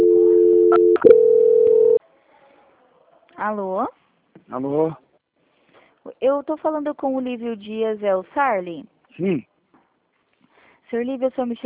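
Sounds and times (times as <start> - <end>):
telephone line tone during a call transfer: 0.0 - 2.0
speech: 3.4 - 5.0, 6.0 - 9.5, 10.9 - 11.6.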